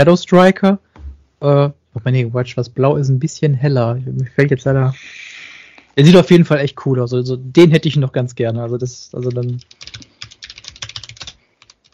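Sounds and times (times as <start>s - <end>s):
speech: 0.0s - 0.8s, 1.4s - 5.3s, 6.0s - 10.1s
computer keyboard typing: 9.2s - 11.9s.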